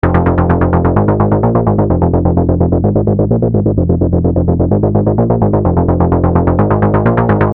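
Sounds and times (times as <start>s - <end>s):
ARP 2600 synthesizer arpeggiated bass: 0.0s - 7.5s.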